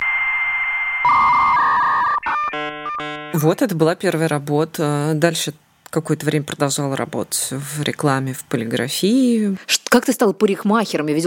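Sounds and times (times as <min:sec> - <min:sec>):
dial-up modem connecting: 0:01.0 - 0:03.4
speech: 0:03.4 - 0:11.2.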